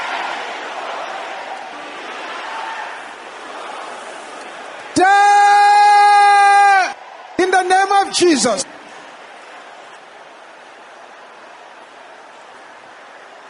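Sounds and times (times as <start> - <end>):
large audience at a prayer service shouting together: 0.0 - 13.4
speech: 5.0 - 5.2, 8.1 - 8.8.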